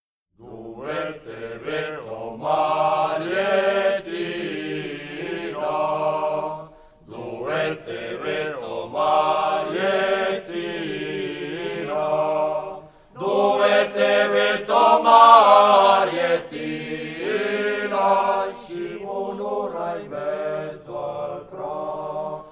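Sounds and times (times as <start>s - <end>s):
choir singing: 0.4s - 22.5s.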